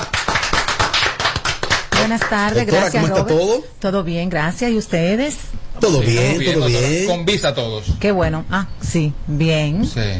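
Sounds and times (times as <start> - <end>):
small group applauding for a studio guest: 0.0 - 3.1
speech: 2.1 - 10.1.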